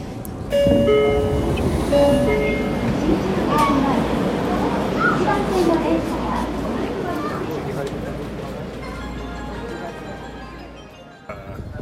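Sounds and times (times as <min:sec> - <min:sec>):
train rumbling as it pulls into a station: 0:00.0 - 0:11.8
high tonal chimes or brake whines: 0:00.5 - 0:02.9, 0:08.8 - 0:11.5
indistinct voices murmuring: 0:01.9 - 0:11.8.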